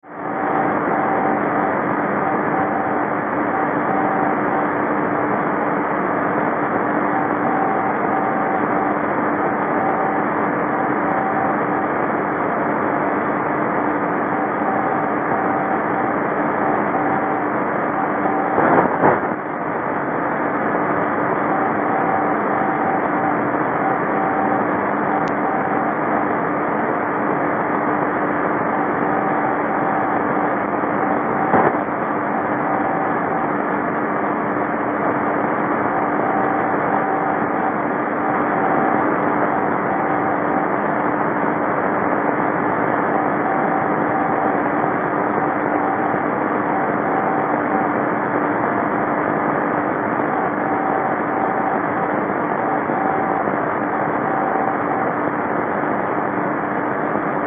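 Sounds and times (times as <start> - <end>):
NDB radio beacon signal at 306 kHz in Parma Italy: 0.0 - 57.4.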